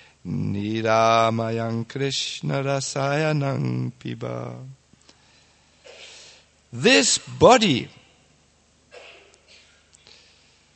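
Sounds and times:
speech: 0.2s - 4.8s, 6.7s - 8.0s
audience members coughing: 5.8s - 6.2s, 8.9s - 9.9s.

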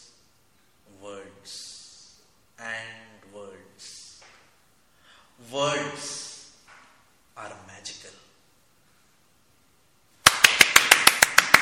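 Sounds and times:
sharp claps: 10.2s - 11.5s.

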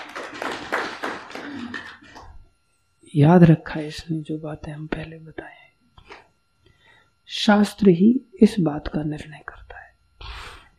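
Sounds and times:
group of people clapping: 0.0s - 2.4s
speech: 3.1s - 5.6s, 7.3s - 9.6s.

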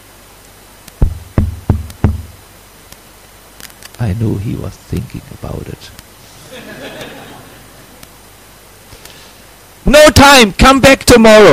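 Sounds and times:
firm knocking on a wooden door: 1.0s - 2.4s
speech: 4.0s - 6.0s, 9.9s - 11.5s
laughter: 6.4s - 8.0s.

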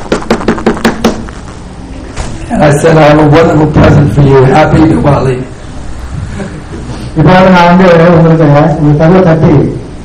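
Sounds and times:
knocking on a wooden door: 0.1s - 1.3s
speech: 2.5s - 5.5s, 7.2s - 9.8s.

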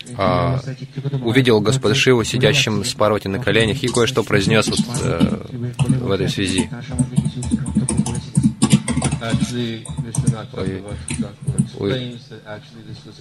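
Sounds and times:
speech: 0.1s - 7.5s, 9.2s - 13.1s
computer keyboard typing: 3.8s - 11.9s.

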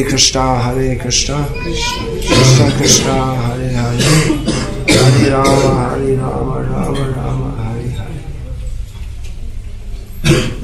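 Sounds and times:
speech: 0.0s - 7.4s
people coughing: 2.0s - 7.4s, 10.2s - 10.6s
throat clearing: 4.0s - 5.8s, 10.2s - 10.6s.

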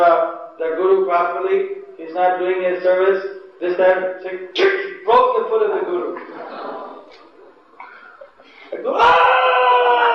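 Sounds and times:
speech: 0.0s - 6.8s, 8.7s - 9.6s
man's voice imitating a scream of pain: 8.8s - 10.1s.

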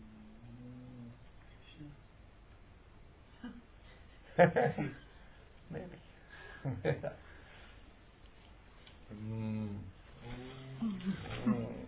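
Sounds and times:
speech: 4.4s - 5.0s, 6.6s - 7.3s
person imitating a Surabhi cow mooing: 9.1s - 11.8s.

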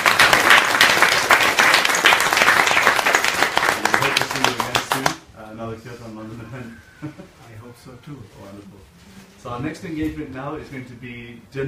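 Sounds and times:
audience applause: 0.0s - 5.2s
speech: 8.0s - 11.6s.

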